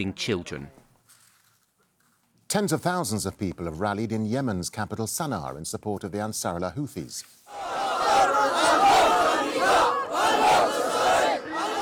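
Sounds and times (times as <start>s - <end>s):
speech: 0.0s - 0.8s, 2.5s - 9.0s
large rally crowd in Sana'a Yemen chanting in unison: 7.5s - 11.7s.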